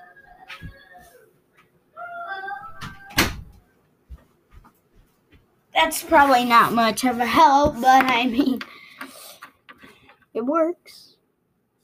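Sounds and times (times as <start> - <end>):
door pushed shut with a sharp thump: 2.8 - 3.6
speech: 5.8 - 8.7, 10.5 - 11.1.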